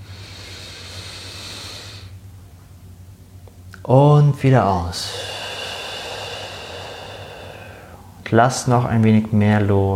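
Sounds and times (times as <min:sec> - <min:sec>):
deep inhalation during guided breathing: 0:00.0 - 0:02.2, 0:05.0 - 0:08.2
low constant hum: 0:00.0 - 0:09.9
speech: 0:03.9 - 0:05.3, 0:08.3 - 0:09.9.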